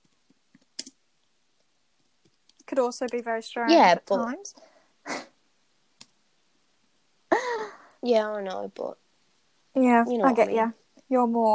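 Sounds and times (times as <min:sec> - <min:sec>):
typing on a computer keyboard: 0:00.0 - 0:01.0, 0:02.0 - 0:03.2
speech: 0:02.7 - 0:05.2, 0:08.0 - 0:09.0, 0:09.8 - 0:11.5.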